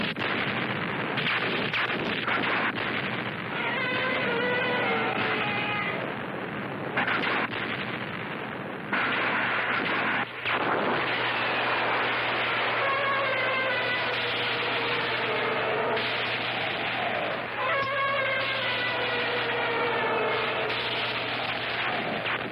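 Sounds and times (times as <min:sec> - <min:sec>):
gunfire barrage in a dramatic attack scene: 0:00.0 - 0:22.5.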